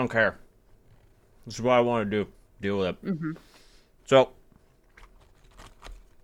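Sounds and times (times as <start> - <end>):
speech: 0.0 - 0.4, 1.4 - 3.5, 4.1 - 4.4
person chewing a burger: 4.7 - 6.2.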